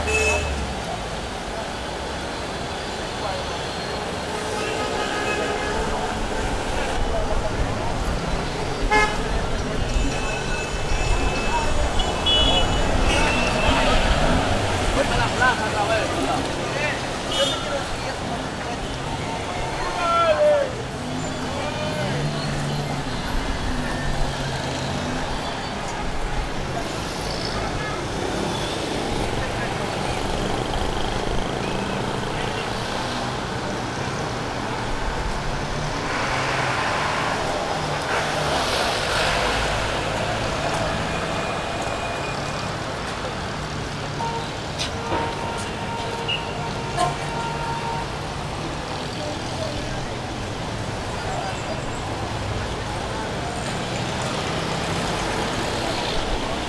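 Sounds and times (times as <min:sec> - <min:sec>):
street traffic in a Caribbean city: 0:00.0 - 0:56.6.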